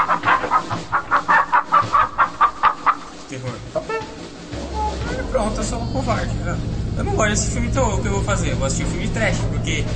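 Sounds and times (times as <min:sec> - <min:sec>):
chicken clucking: 0:00.0 - 0:05.1
speech: 0:05.7 - 0:09.9.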